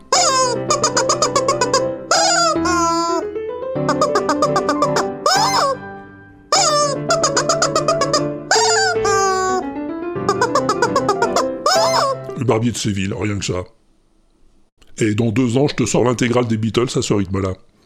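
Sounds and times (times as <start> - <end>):
squeaky rubber chicken toy honking out a fast bouncy melody: 0.1 - 3.2, 3.8 - 5.9, 6.5 - 9.6, 10.2 - 12.3
speech: 12.6 - 13.8, 15.0 - 17.7.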